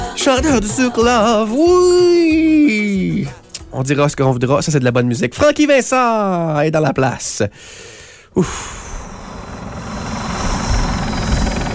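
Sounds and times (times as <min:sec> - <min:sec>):
speech: 0:00.2 - 0:08.9
helicopter rotor thrumming overhead: 0:09.0 - 0:11.7.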